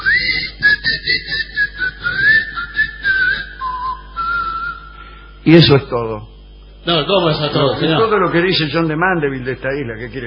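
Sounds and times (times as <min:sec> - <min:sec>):
laughter: 0:00.0 - 0:02.2, 0:06.9 - 0:09.0
person whistling a wavering melodic tune: 0:00.0 - 0:05.0
speech: 0:05.5 - 0:10.2.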